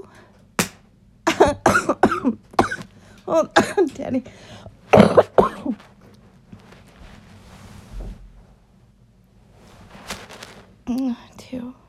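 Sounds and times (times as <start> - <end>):
sharp coughs: 1.3 - 3.0, 4.9 - 5.8
speech: 3.3 - 5.8
rustling: 5.6 - 11.0.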